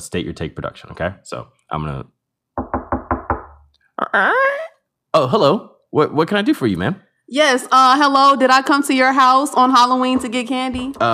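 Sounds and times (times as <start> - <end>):
speech: 0.0 - 2.2, 4.1 - 4.6, 5.2 - 11.1
knocking on a wooden door: 2.6 - 3.6, 9.9 - 11.1.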